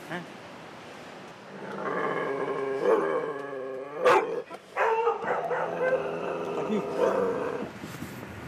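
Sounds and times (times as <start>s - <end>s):
frightened dog in a small box barking and whining: 2.7s - 7.7s.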